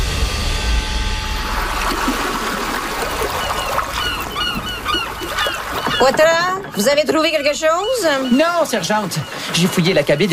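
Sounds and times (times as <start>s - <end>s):
steady outdoor wash: 0.0s - 10.3s
water lapping in a fishing port: 1.4s - 10.3s
birds calling and honking: 2.2s - 10.3s
speech: 6.0s - 10.3s.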